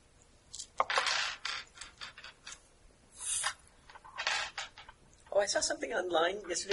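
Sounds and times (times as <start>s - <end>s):
dice rattling across a hard tabletop: 0.6s - 2.6s, 3.4s - 5.0s
speech: 5.4s - 6.7s.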